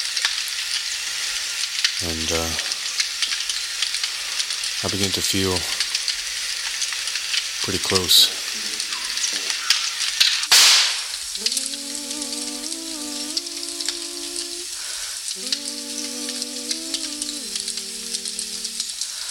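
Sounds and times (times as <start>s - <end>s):
burning wildfire crackling and popping: 0.0s - 19.3s
speech: 2.0s - 2.7s, 4.8s - 5.8s, 7.7s - 8.4s
long sustained tonal notes droning: 11.4s - 14.7s, 15.4s - 19.0s.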